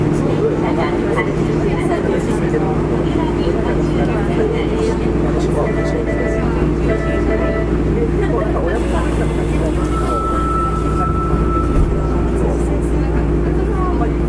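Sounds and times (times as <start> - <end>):
Fukuoka city subway 3000 series train running on the Nanakuma Line: 0.0 - 14.2
short repeated beeping tones: 5.6 - 7.8, 9.7 - 12.4.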